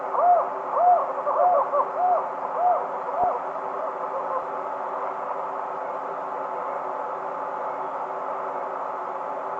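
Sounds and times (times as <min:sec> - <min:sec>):
tropical screech owl Megascops choliba duet in South America eastern lowlands: 0:00.0 - 0:04.6
constant low hum: 0:00.0 - 0:09.5.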